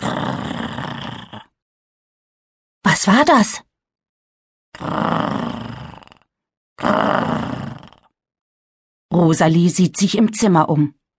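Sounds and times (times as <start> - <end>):
long rough growls: 0.0 - 1.6, 4.8 - 8.2
speech: 3.0 - 3.7, 4.8 - 5.5, 9.2 - 11.0.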